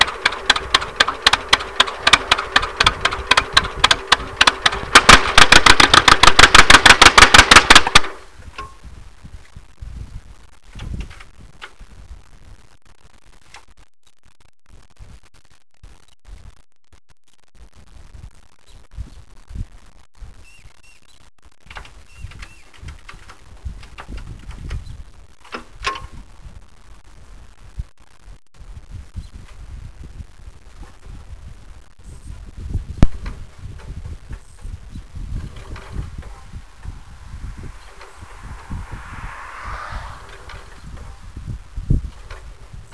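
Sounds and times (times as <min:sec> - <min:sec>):
tractors at a stall in Poland: 0:00.0 - 0:08.8, 0:21.7 - 0:24.8, 0:33.0 - 0:42.9.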